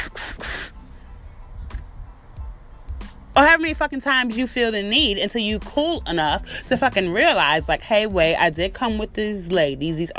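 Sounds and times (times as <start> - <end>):
fire extinguisher spraying: 0.0 - 0.8
speech: 3.4 - 10.1.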